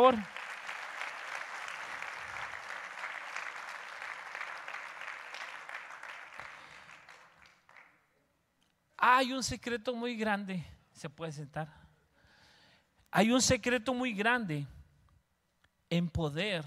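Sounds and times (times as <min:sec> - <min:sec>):
speech: 0:00.0 - 0:00.4, 0:09.1 - 0:11.8, 0:13.1 - 0:14.8, 0:15.9 - 0:16.6
audience applauding: 0:00.0 - 0:08.0.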